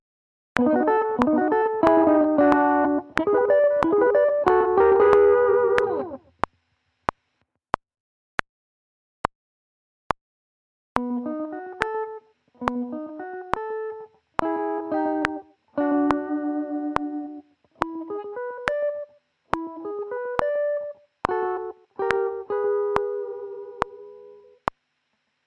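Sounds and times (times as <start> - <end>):
guitar sweeping: 0.6 - 6.3, 11.0 - 24.6.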